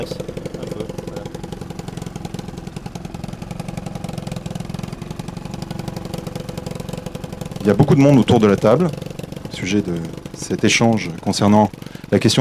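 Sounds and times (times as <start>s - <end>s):
speech: 0.0s - 0.3s, 7.6s - 12.3s
modified boat-style Yamaha quad bike engine starting and idling: 0.0s - 12.3s.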